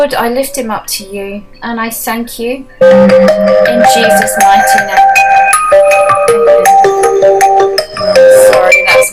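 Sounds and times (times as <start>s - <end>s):
speech: 0.0s - 5.3s
mobile phone ringtone with bright electronic melody: 2.8s - 9.1s.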